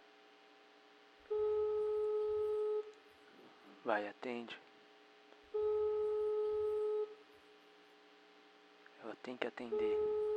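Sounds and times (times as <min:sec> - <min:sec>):
telephone ringing tone: 0:01.3 - 0:02.9, 0:05.6 - 0:07.2, 0:09.7 - 0:10.3
speech: 0:03.9 - 0:04.7, 0:09.2 - 0:10.3.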